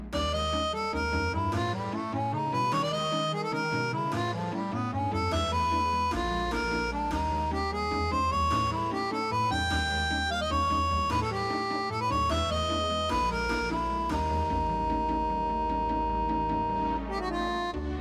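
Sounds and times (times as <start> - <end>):
solo harmonica concertino: 0.2 - 17.9.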